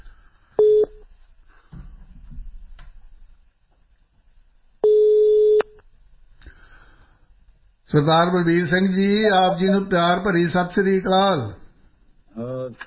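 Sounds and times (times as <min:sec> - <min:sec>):
telephone line beeps as a phone call is placed: 0:00.6 - 0:01.0, 0:04.8 - 0:05.8
speech: 0:07.9 - 0:11.6, 0:12.4 - 0:12.8.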